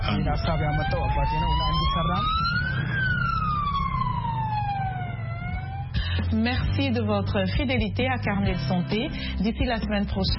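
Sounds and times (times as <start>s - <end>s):
siren of a low-cost improvised ambulance wailing: 0.0s - 6.0s
steady low engine rumble: 0.0s - 10.3s
speech: 0.2s - 2.9s, 6.3s - 10.3s.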